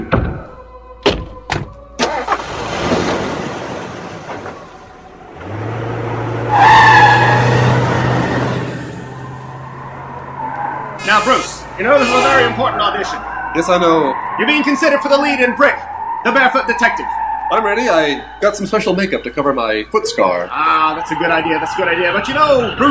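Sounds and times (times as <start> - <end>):
car engine revving and droning: 2.0 - 19.9
car tires squealing as the car pulls away fast: 2.0 - 22.8
speech: 11.3 - 22.8.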